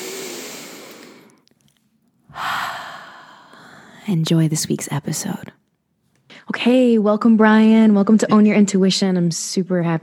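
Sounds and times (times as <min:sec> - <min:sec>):
person taking a deep breath: 0:00.0 - 0:01.4, 0:02.3 - 0:04.1
speech: 0:04.1 - 0:05.6, 0:06.6 - 0:10.0.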